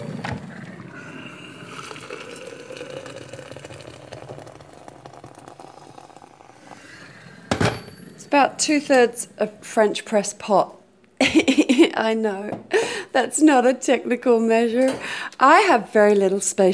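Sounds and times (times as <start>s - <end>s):
hot water pouring from a kettle into a French press: 0.0s - 7.6s
speech: 8.3s - 16.7s.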